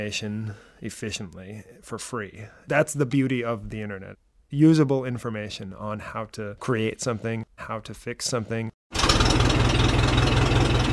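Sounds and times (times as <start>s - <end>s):
speech: 0.0s - 9.4s
old 1956 Ford tractor or 1967 Volvo sports car engine idling: 9.0s - 10.9s.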